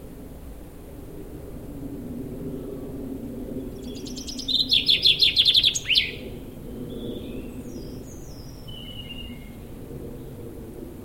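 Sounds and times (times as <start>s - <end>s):
common chaffinch song ending, Fringilla coelebs: 3.6s - 9.7s.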